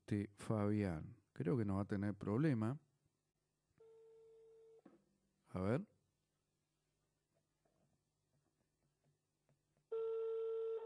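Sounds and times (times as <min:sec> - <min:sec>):
speech: 0:00.1 - 0:02.8, 0:05.5 - 0:05.9
electronic ringback tone of outgoing phone call: 0:09.9 - 0:10.8.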